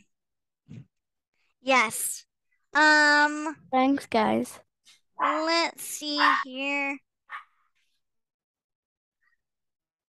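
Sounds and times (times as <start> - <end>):
speech: 1.6 - 4.6, 5.2 - 7.0
mini goldendoodle dog giving high-pitched barks: 7.3 - 7.6.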